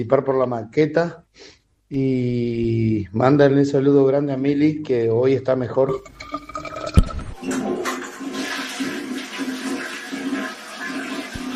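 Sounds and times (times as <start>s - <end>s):
speech: 0.0s - 6.4s
hot water rushing from a tank into a container: 7.4s - 11.5s.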